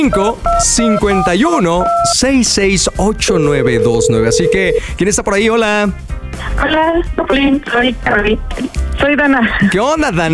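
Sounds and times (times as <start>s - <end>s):
speech: 0.0s - 10.3s
telephone dialing tones for an incoming call, dual-pitch beeps: 0.1s - 2.2s, 3.4s - 4.9s.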